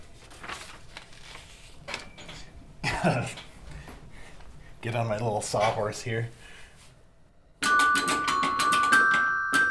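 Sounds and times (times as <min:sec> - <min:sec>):
speech: 0:03.0 - 0:03.5, 0:04.8 - 0:06.5
large carillon bells ringing in a bell tower: 0:07.6 - 0:09.7.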